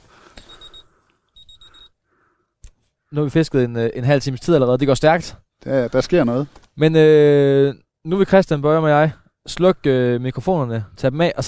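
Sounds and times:
wristwatch alarm beeping: 0.4s - 2.0s
speech: 3.1s - 11.4s.

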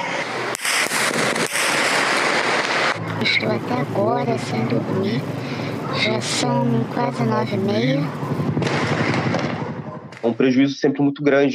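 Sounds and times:
sharp loud gunshot reports: 0.1s - 10.8s
heavy gunfire bursts during a police operation: 0.6s - 3.0s, 8.3s - 10.2s
speech: 3.2s - 8.5s, 10.2s - 11.5s.

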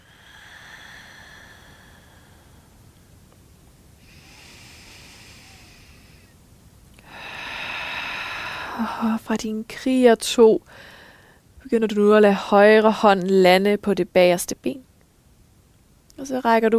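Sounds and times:
slow deep breathing while holding the yoga warrior two pose: 0.0s - 3.2s, 4.0s - 6.4s, 7.0s - 9.1s, 10.6s - 11.5s
speech: 8.8s - 10.9s, 11.7s - 14.9s, 16.2s - 16.7s.

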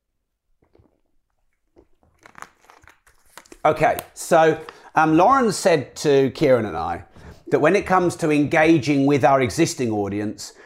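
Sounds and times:
person sipping water: 0.5s - 3.7s, 7.1s - 7.6s
plastic bottle crinkling from handling: 0.6s - 5.0s
speech: 3.6s - 10.6s.

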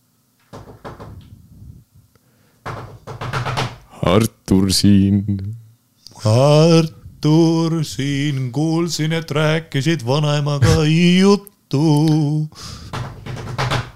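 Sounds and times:
knocking on a door: 0.5s - 1.3s, 2.6s - 3.8s, 12.9s - 13.9s
speech: 4.1s - 5.6s, 6.2s - 12.9s.

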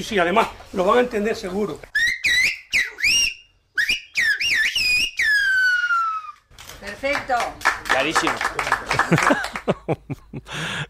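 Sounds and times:
speech: 0.0s - 2.0s, 7.0s - 10.8s
human whistle in Silbo Gomero whistled language of La Gomera: 1.9s - 6.4s
laughter: 8.4s - 10.8s.

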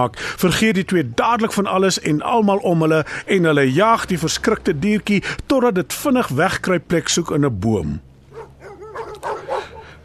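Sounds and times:
speech: 0.0s - 8.1s
dog barking and yipping: 8.3s - 10.0s.

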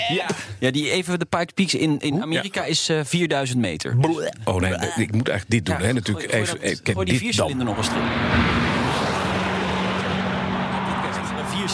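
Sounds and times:
speech: 0.0s - 8.8s
tuned race car accelerating uphill on a hill climb: 7.1s - 11.7s.

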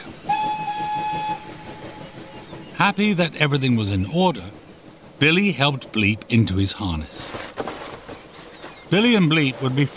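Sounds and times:
small train chugging: 0.0s - 9.9s
small train whistle toot: 0.3s - 2.2s
speech: 2.8s - 4.6s, 5.2s - 7.4s, 8.9s - 9.9s.

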